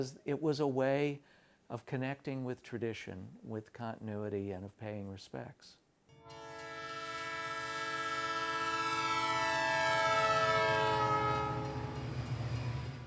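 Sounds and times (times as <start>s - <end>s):
speech: 0.0s - 6.4s
train horn blaring: 6.2s - 12.9s.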